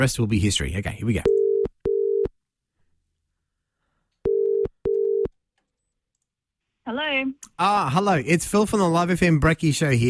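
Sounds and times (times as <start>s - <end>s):
speech: 0.0s - 1.4s, 7.2s - 10.0s
phone ringback tone on an outgoing call from a radio breakfast show: 1.3s - 2.3s, 4.3s - 5.3s.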